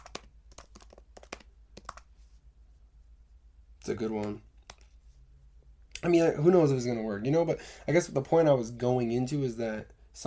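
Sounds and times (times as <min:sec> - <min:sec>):
typing on a computer keyboard: 0:00.0 - 0:02.1, 0:04.2 - 0:04.9
speech: 0:03.9 - 0:04.5, 0:06.0 - 0:10.2.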